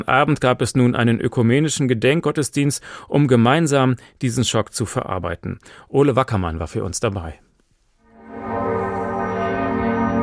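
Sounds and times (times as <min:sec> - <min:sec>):
speech: 0:00.0 - 0:07.5
church bells ringing: 0:08.2 - 0:10.2.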